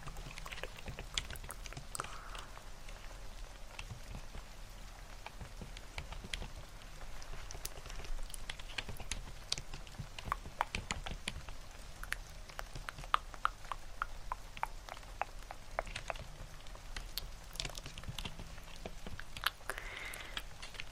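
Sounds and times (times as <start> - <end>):
faint breathy mouth sounds: 0.0 - 2.7, 11.5 - 16.3, 17.0 - 20.7
low constant hum: 0.0 - 20.9
rain pattering: 0.0 - 20.9
sharper ticks and taps: 0.1 - 2.5, 5.2 - 20.9.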